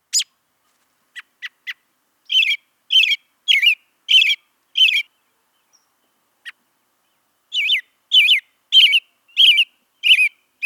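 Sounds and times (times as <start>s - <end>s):
American robin calls: 0.0s - 0.4s, 1.1s - 10.6s.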